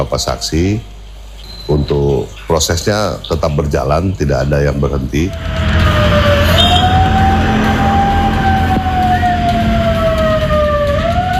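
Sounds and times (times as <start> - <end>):
speech: 0.0 - 0.9, 1.7 - 6.4
street traffic rumble on Jalan Jenderal Sudirman in Pare-Pare, South Sulawesi: 5.2 - 11.3
siren resembling an ambulance siren on a street: 5.3 - 11.3.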